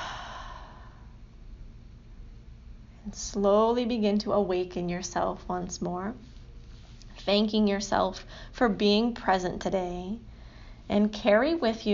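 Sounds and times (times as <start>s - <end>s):
clearing breath pushed out after a deep inhale: 0.0s - 1.2s
speech: 3.1s - 6.3s, 7.2s - 10.3s, 10.9s - 11.9s.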